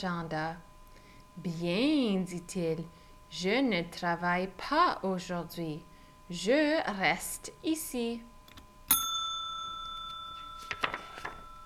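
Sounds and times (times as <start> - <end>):
speech: 0.0 - 0.7, 1.4 - 8.3
telephone ringing with a bright bell-like strike: 8.9 - 11.6.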